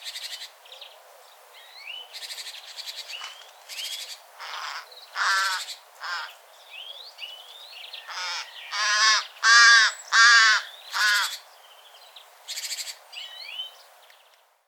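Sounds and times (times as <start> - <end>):
Carrion crow cawing: 4.4 - 6.3, 8.1 - 11.4.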